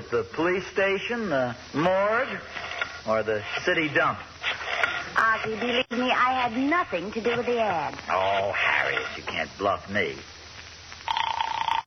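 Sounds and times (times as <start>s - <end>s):
speech: 0.1s - 4.6s, 5.2s - 10.4s
telephone bell ringing: 11.1s - 11.8s.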